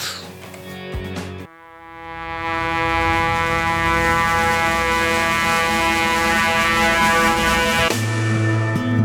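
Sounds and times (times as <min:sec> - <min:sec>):
sustained swelling horn-like wind instrument tone opening a song: 0:01.5 - 0:08.2.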